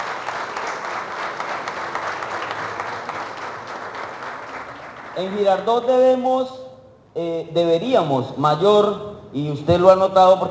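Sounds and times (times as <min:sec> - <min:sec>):
audience applauding at a municipal government event: 0:00.0 - 0:05.5
speech: 0:05.2 - 0:06.6, 0:07.2 - 0:10.4.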